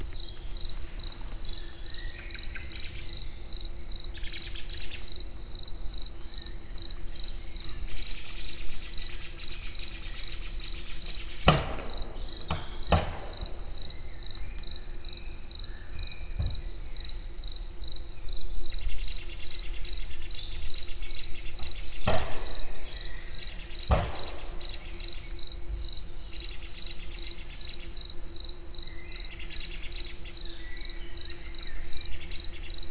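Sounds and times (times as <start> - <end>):
cricket chirping: 0.0 - 32.8
work noise: 11.4 - 13.9, 23.8 - 25.2.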